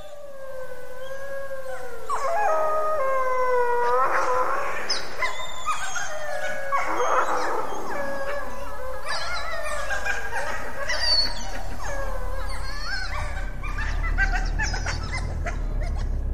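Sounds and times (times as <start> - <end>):
hungry wolf pups whining and howling: 0.0 - 16.3.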